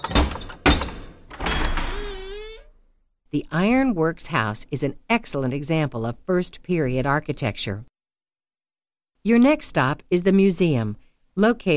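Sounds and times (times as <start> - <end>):
iron latch of a heavy wooden door clanking: 0.0 - 2.8
speech: 3.3 - 7.9, 9.2 - 11.7.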